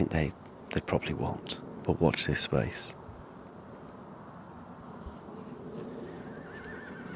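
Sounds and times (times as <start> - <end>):
speech: 0.0 - 3.0
steady outdoor background hum: 0.0 - 7.1
horse neighing: 6.1 - 7.1.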